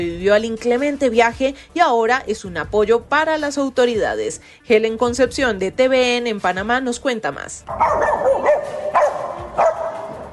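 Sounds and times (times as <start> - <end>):
speech: 0.0 - 8.8
small female dog barking in high-pitched yaps at a port in Panama: 7.7 - 10.2.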